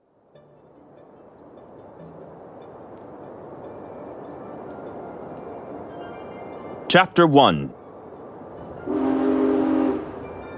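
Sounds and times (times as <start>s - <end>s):
rumble of train speeding along a track on a mountain pass at night: 0.0s - 6.9s, 7.7s - 10.5s
speech: 6.9s - 7.8s
train horn blast on a mountain pass at night: 8.7s - 10.5s.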